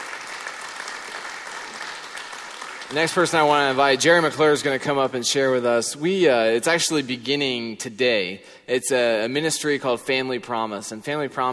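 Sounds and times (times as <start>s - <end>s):
audience applause at a church service: 0.0s - 4.6s
speech: 2.9s - 11.5s.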